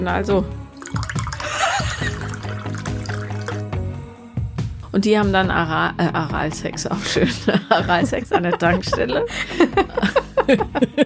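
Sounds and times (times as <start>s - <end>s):
speech: 0.0s - 1.1s, 4.9s - 11.0s
Ramazzotti liqueur glugging from a bottle into a glass: 0.8s - 3.7s
laughter: 1.4s - 2.4s, 7.1s - 11.0s.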